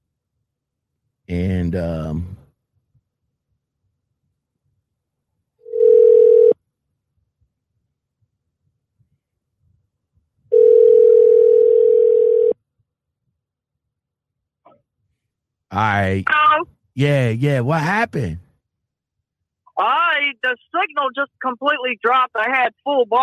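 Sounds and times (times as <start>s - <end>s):
speech: 1.3s - 2.4s, 15.8s - 18.4s, 19.8s - 23.2s
telephone line tone while placing a call: 5.7s - 6.6s, 10.5s - 12.6s.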